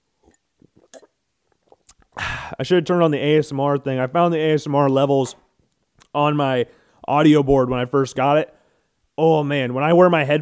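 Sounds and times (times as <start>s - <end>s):
mouth clicks: 0.2s - 2.6s
person sipping water: 0.2s - 2.6s
speech: 2.5s - 5.4s, 6.1s - 8.6s, 9.2s - 10.4s.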